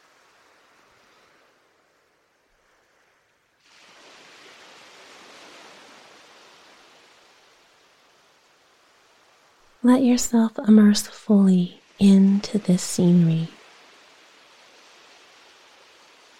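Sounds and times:
ocean waves rolling in and out: 0.0s - 16.3s
speech: 9.8s - 13.6s.

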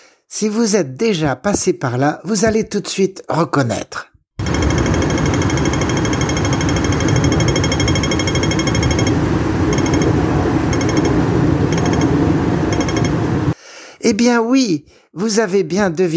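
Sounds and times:
speech: 0.3s - 4.1s, 14.1s - 16.1s
pedestrian crossing signal in Hong Kong ticking: 4.4s - 13.4s.

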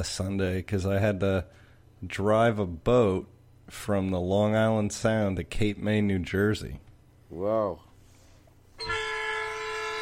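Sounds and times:
speech: 0.0s - 7.9s
passing train sounding its horn: 8.8s - 10.0s.

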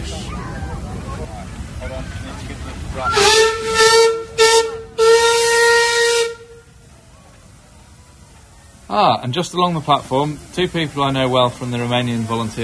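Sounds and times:
steam locomotive passing on a railway: 0.0s - 12.6s
steam locomotive shrill whistle blowing: 3.0s - 6.7s
speech: 9.0s - 12.6s.

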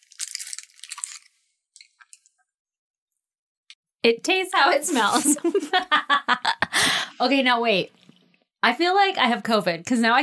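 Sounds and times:
crunchy food being bitten and chewed: 0.0s - 2.4s
speech: 4.0s - 6.5s, 7.2s - 8.0s, 8.6s - 10.2s.

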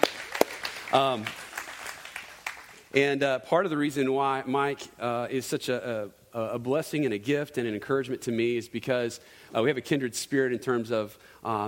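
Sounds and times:
audience applause: 0.0s - 2.9s
speech: 0.9s - 1.4s, 2.9s - 11.6s.

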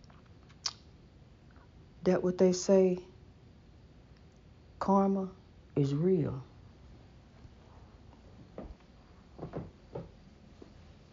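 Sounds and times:
speech: 2.0s - 3.1s, 4.8s - 6.5s
wooden floorboards creaking under slow uneven steps: 9.4s - 10.2s.

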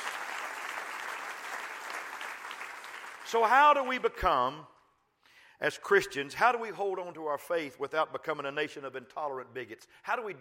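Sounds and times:
applause from a large group: 0.0s - 3.5s
speech: 3.3s - 4.7s, 5.6s - 10.4s.

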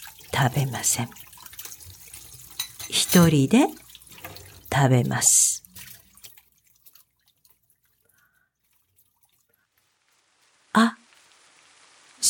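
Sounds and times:
rain dripping outside: 0.0s - 12.2s
speech: 0.4s - 1.3s, 2.9s - 3.8s, 4.7s - 5.6s
steady hiss of rainfall: 9.6s - 12.2s.

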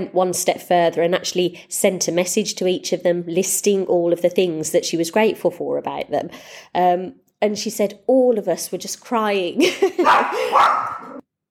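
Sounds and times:
speech: 0.0s - 11.1s
dog barking: 10.0s - 11.2s.

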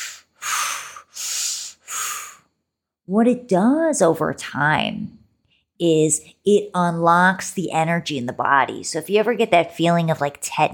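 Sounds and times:
connected breathing in and out through the mouth: 0.0s - 2.6s
speech: 3.1s - 5.2s, 5.8s - 10.7s.

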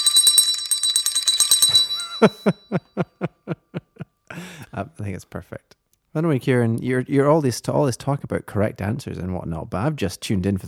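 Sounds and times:
bell ringing rapidly and insistently: 0.0s - 2.9s
speech: 1.7s - 3.6s, 4.8s - 10.6s.

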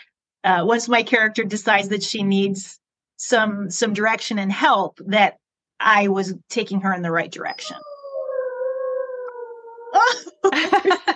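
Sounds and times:
speech: 0.4s - 7.9s
dog in a rural area howling and yelping: 7.5s - 10.3s.

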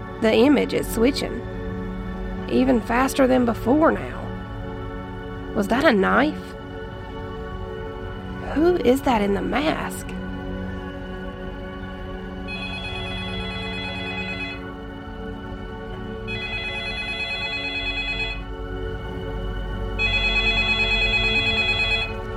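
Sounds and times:
speech: 0.2s - 1.6s, 2.5s - 4.2s, 5.5s - 6.5s, 8.5s - 10.1s
telephone ringing: 12.5s - 14.7s, 16.3s - 18.5s, 20.0s - 22.2s.

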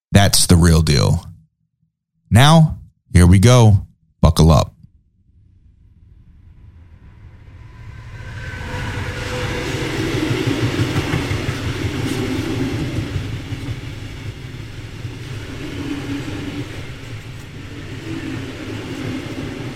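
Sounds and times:
speech: 0.1s - 1.3s, 2.3s - 4.7s
train rumbling on rails: 6.4s - 19.7s
faint rhythmic clatter of train on rails: 9.2s - 19.7s.

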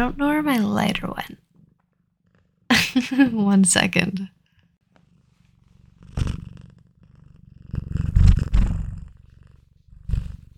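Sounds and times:
speech: 0.0s - 1.5s, 3.0s - 4.4s
cat purring: 0.0s - 10.5s.

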